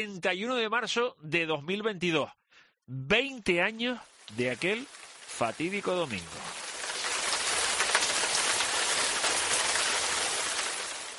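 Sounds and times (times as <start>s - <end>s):
speech: 0.0s - 6.6s
rain falling: 3.5s - 11.1s.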